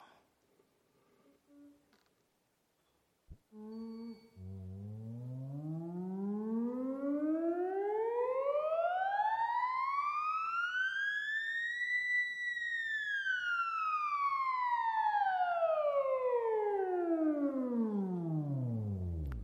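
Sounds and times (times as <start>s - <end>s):
theremin glissando: 3.6s - 19.4s.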